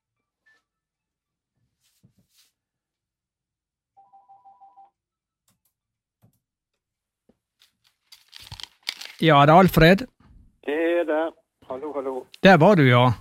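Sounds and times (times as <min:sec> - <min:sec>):
electronic telephone ringing: 0:04.0 - 0:04.9
rustling handling noises: 0:07.5 - 0:09.4
speech: 0:09.2 - 0:10.1, 0:12.1 - 0:13.1.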